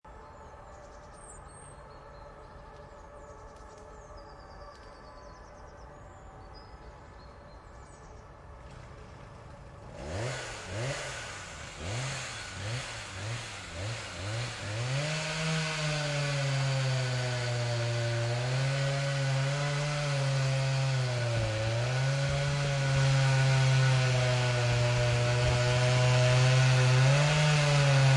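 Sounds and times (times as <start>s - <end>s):
chainsaw in the forest: 8.6s - 28.1s.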